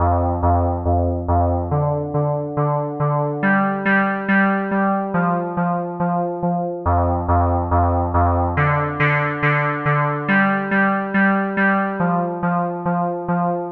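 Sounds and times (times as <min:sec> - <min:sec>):
synth loop: 0:00.0 - 0:13.6.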